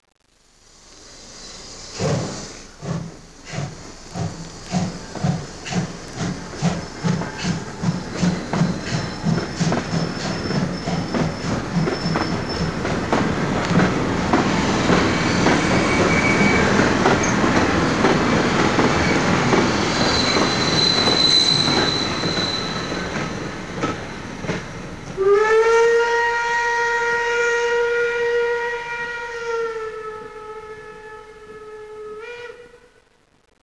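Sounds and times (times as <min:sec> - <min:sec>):
steam train departing: 0:00.6 - 0:32.8
rail joint clatter: 0:02.0 - 0:25.2.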